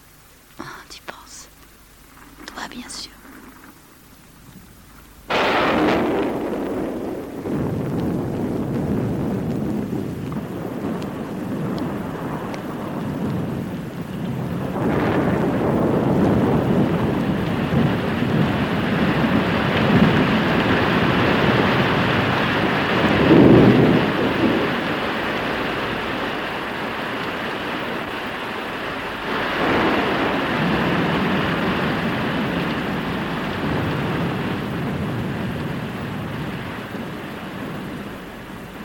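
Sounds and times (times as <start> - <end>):
steady rain in a thunderstorm: 0.0 - 38.8
rumbling thunder in a thunderstorm: 2.2 - 38.8.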